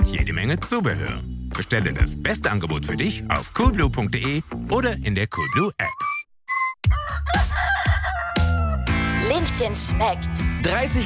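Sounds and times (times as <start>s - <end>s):
speech: 0.2s - 6.2s, 9.5s - 11.0s
farm hens kept for eggs clucking: 6.9s - 8.8s
farm rooster crowing: 6.9s - 9.0s.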